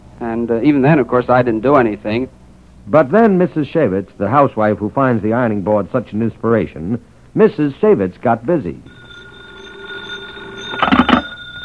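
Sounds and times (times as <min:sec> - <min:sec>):
faint steady hum: 0:00.0 - 0:11.6
speech: 0:00.2 - 0:09.0
old-fashioned telephone bell ringing: 0:08.9 - 0:11.6.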